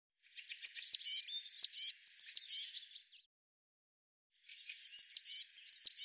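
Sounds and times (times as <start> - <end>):
Eurasian blue tit chirping with buzzy bursts: 0.5 - 3.2, 4.6 - 6.0.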